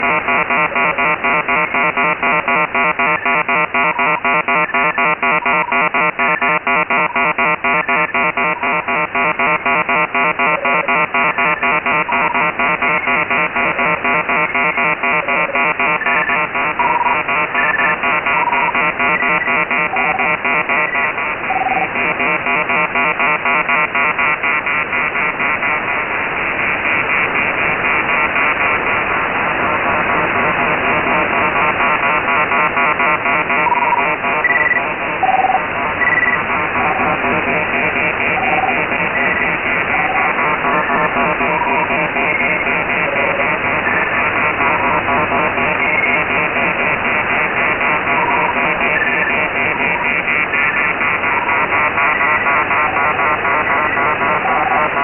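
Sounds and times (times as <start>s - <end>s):
radio beep on shortwave frequency in the evening: 0.0s - 55.0s.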